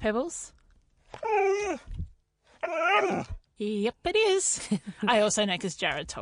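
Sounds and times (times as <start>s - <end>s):
speech: 0.0s - 2.0s, 2.6s - 6.1s
dog whimpering: 1.2s - 2.0s, 2.6s - 3.4s
dog growling: 1.2s - 3.5s.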